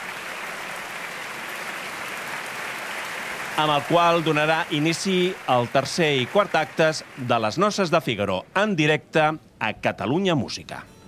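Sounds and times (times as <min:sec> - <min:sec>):
opera audience applauding the orchestra: 0:00.0 - 0:08.1
speech: 0:03.6 - 0:10.9.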